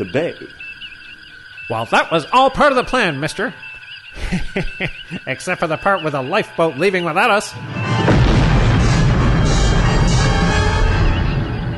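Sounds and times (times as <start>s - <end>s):
speech: 0.0s - 0.6s, 1.7s - 7.8s
laughter: 4.1s - 6.8s
roaring explosion of an object hitting a planet's atmosphere: 7.8s - 11.7s.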